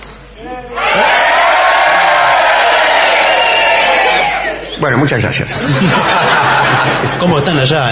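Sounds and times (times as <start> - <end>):
speech: 0.4 - 0.8, 4.8 - 7.9
crowd in a packed hall shouting all together: 0.8 - 4.6
laughter: 5.1 - 7.8.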